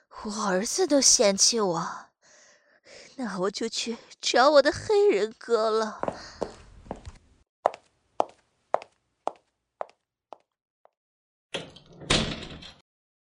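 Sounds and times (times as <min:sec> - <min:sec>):
speech: 0:00.2 - 0:02.1, 0:02.9 - 0:06.4
door swinging open and thudding shut: 0:11.6 - 0:12.8.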